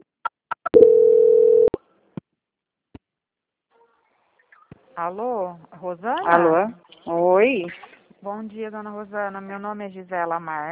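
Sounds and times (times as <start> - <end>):
telephone tone during a call transfer: 0.8 - 1.8
speech: 5.0 - 10.6.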